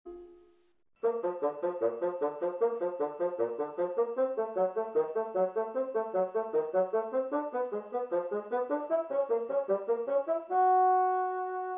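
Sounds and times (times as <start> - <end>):
bassoon: 1.0 - 11.7.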